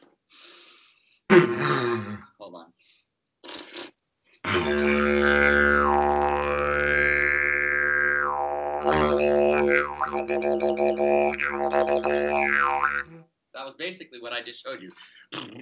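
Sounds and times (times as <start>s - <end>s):
wet suction sound of fluid bubbles made by mouth: 4.5s - 13.1s
voice imitating a didgeridoo by mouth: 4.5s - 13.2s, 14.9s - 15.6s
speech: 10.3s - 12.9s, 13.8s - 15.6s.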